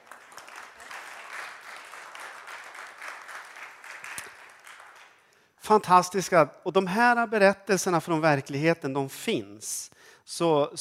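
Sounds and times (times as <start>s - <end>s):
audience applauding: 0.0s - 5.3s
speech: 5.7s - 10.7s.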